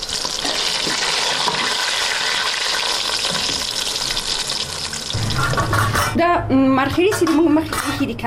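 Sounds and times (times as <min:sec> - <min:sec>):
steamed mushrooms sizzling as they fry in a pan: 0:00.0 - 0:05.2
speech: 0:06.2 - 0:08.2.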